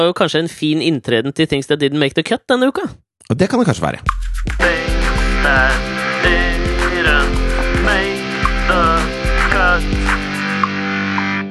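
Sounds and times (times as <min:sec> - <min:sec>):
speech: 0:00.0 - 0:08.1
steady droning bass of a podcast jingle: 0:04.4 - 0:11.4
warbling synth melody lines: 0:04.6 - 0:10.9.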